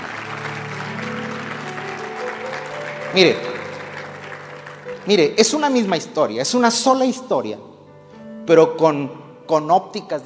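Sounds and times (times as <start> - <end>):
audience applauding during a morning church service: 0.0 - 6.3
faint sustained tones from an organ or keyboard: 0.0 - 6.8
speech: 3.1 - 3.5, 5.0 - 7.7, 8.5 - 10.2.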